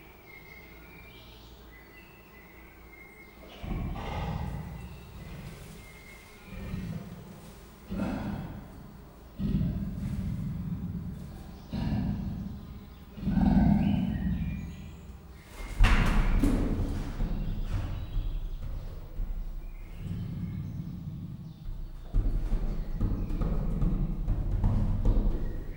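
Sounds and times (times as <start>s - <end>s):
captive Persian leopard grunting rasps at a zoo in Miskolc: 3.4s - 25.7s.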